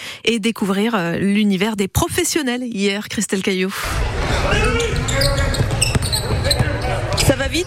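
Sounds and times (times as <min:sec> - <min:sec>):
speech: 0:00.2 - 0:05.8, 0:07.4 - 0:07.6
shoe noise on an indoor court: 0:03.9 - 0:07.6
basketballs bouncing on a hard gym floor: 0:04.9 - 0:07.4.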